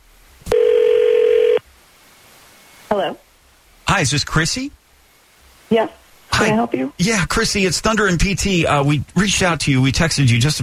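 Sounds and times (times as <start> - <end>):
loud steady telephone tone on an outgoing call: 0.5 - 1.6
speech: 2.9 - 3.2, 4.0 - 4.8, 5.7 - 10.6.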